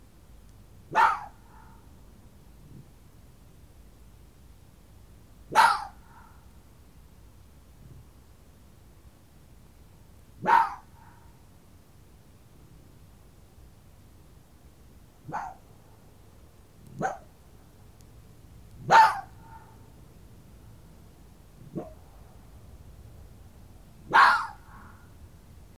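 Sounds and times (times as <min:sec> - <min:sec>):
female fox barking: 0:00.9 - 0:01.9, 0:05.5 - 0:06.5, 0:10.4 - 0:11.4, 0:15.2 - 0:15.8, 0:16.9 - 0:17.3, 0:18.8 - 0:19.9, 0:21.6 - 0:22.1, 0:24.0 - 0:25.1.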